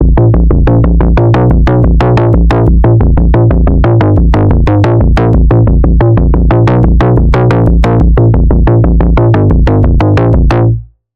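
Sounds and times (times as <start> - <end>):
software synthesizer pulse: 0.0 - 10.8.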